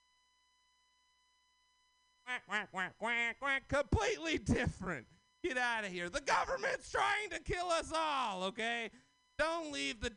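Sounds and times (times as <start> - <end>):
person imitating a duck singing a song: 2.3 - 3.8
speech: 2.3 - 10.1.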